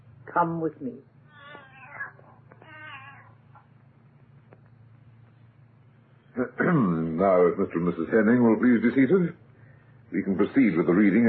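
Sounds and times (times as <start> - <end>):
low steady hum: 0.0 - 11.2
speech: 0.4 - 1.1, 6.4 - 9.4, 10.1 - 11.2
cat meowing with drawn-out wavering meows: 1.3 - 3.7.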